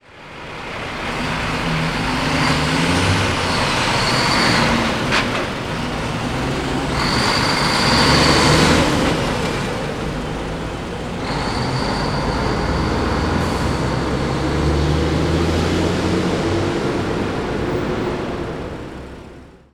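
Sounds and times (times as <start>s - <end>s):
truck gears: 0.5s - 19.6s.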